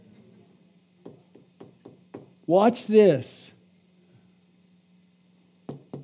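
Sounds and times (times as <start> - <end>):
knocking on hard object: 1.0 - 2.3, 5.7 - 6.0
speech: 2.5 - 3.5.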